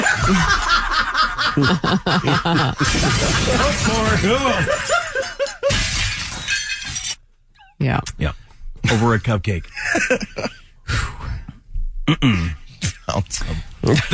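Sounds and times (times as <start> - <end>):
people snickering and laughing loudly: 0.0 - 5.7, 9.8 - 10.6
speech: 0.3 - 0.7, 1.6 - 5.0, 7.8 - 11.0, 12.1 - 14.1
car windshield and back window glass shattering and crunching: 2.8 - 7.2.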